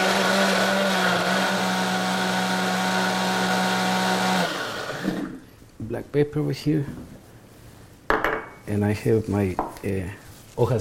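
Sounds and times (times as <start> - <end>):
kitchen blender running: 0.0 - 5.4
speech: 6.1 - 7.0, 8.7 - 10.7.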